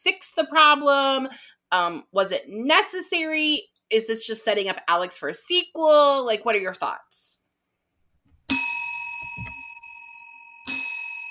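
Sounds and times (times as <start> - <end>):
speech: 0.5 - 7.4
bright bell dings: 8.5 - 11.3.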